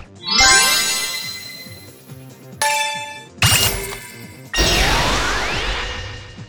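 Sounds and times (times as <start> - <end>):
casual action sound effect: 0.2 - 6.4.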